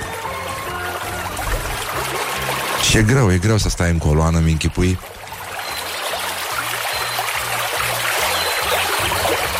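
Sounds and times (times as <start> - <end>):
steady rushing water like a waterfall: 0.0 - 9.5
speech: 2.9 - 5.1.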